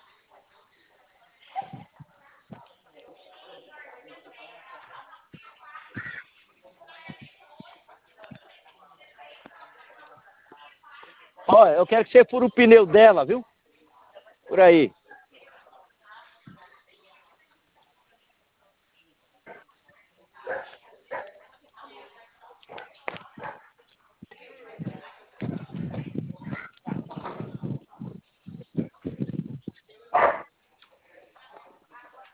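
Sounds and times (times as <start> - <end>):
speech: 11.6 - 13.5, 14.6 - 15.0
dog barking in sharp repeated yaps: 20.4 - 21.4, 30.1 - 30.5.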